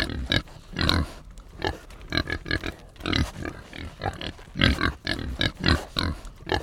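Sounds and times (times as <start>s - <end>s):
pigs on a farm grunting and snorting while being fed: 0.0s - 6.6s.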